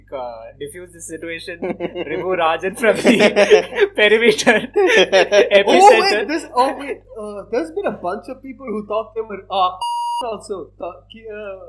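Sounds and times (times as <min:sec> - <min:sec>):
speech: 0:00.1 - 0:11.6
laughter: 0:01.6 - 0:06.4
censor bleep tone: 0:09.8 - 0:10.3.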